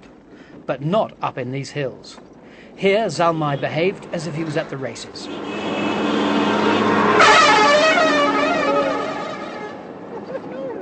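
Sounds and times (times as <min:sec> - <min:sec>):
traffic rumble on a busy road in the hills of Afghanistan: 0:00.0 - 0:10.7
speech: 0:00.7 - 0:05.6
car horns honking in traffic jam in the hills of Afghanistan: 0:03.4 - 0:10.0.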